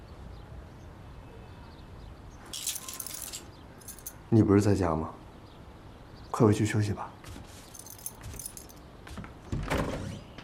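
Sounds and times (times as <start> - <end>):
keys jangling: 2.6 - 4.2, 7.6 - 8.8
speech: 4.3 - 5.2, 6.4 - 7.2.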